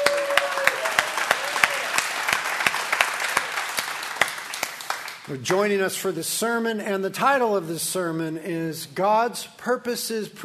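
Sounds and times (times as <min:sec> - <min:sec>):
audience applauding at the Ventura campus: 0:00.0 - 0:05.4
speech: 0:05.3 - 0:10.4.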